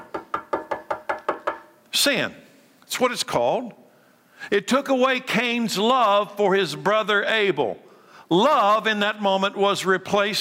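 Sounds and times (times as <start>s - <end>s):
firm hollow knocks on a door: 0.0s - 1.7s
speech: 2.0s - 3.8s, 4.4s - 10.3s.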